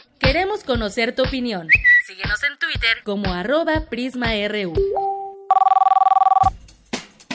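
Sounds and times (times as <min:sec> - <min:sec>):
speech: 0:00.3 - 0:05.7
telephone bell ringing: 0:05.5 - 0:06.5.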